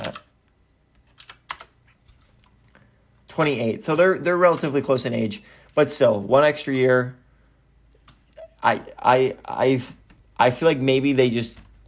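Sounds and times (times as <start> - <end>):
computer keyboard clacking: 1.0 - 1.8
speech: 3.4 - 7.2, 8.6 - 11.6.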